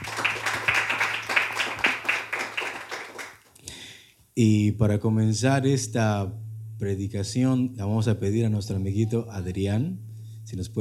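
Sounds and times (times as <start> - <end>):
group of people clapping their hands: 0.0 - 3.6
low hum: 4.4 - 10.8
speech: 4.4 - 10.8.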